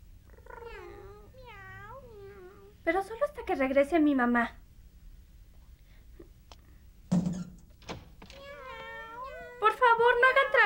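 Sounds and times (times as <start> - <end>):
low hum: 0.0 - 10.6
cat meowing: 0.3 - 2.8, 8.4 - 10.6
speech: 2.9 - 4.6.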